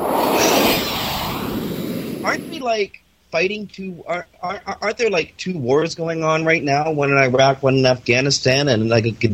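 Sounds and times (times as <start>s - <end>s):
airplane passing overhead: 0.0s - 2.6s
speech: 2.6s - 9.3s.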